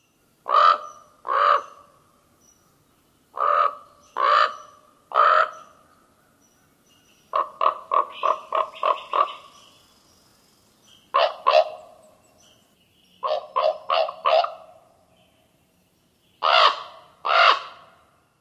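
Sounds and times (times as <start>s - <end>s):
common raven various calls: 0.4s - 2.0s, 3.3s - 5.9s, 7.3s - 9.7s, 11.1s - 12.0s, 13.2s - 14.8s, 16.4s - 18.1s.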